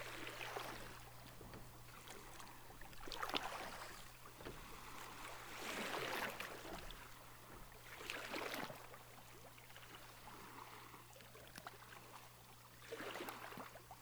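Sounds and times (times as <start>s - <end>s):
faint steady low hum: 0.0s - 10.4s
sea water lapping gently at the shore: 0.0s - 13.6s.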